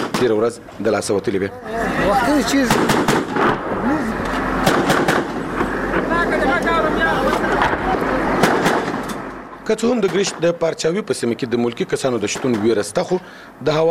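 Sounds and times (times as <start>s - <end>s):
gunfire from an exchange between police and militants: 0.0s - 0.4s, 2.7s - 3.9s, 4.6s - 6.1s, 7.6s - 9.3s
constant noise: 0.0s - 13.9s
speech: 0.2s - 4.2s, 9.7s - 13.9s.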